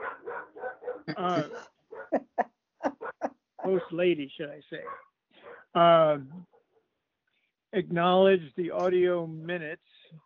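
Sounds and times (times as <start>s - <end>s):
dog barking: 0.0s - 1.1s, 1.9s - 2.2s, 4.8s - 5.7s
speech: 1.1s - 1.7s, 3.7s - 5.1s, 5.8s - 6.5s, 7.7s - 10.0s.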